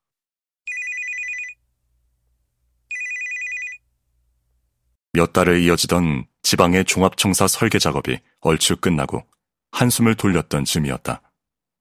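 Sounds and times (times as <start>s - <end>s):
telephone ringing with an incoming call: 0.7s - 1.6s, 2.9s - 3.8s
speech: 5.2s - 11.2s.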